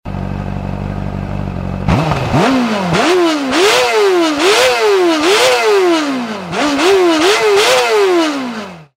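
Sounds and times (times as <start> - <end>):
CBR600RR motorcycle engine: 0.1 - 8.9.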